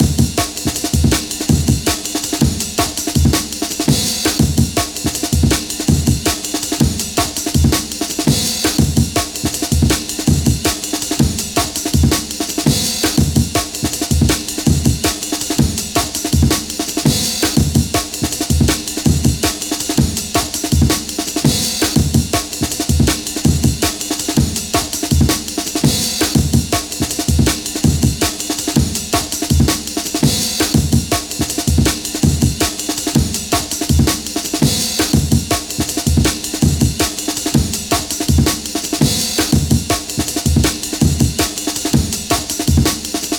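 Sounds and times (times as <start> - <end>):
drum break loop: 0.0 - 43.3.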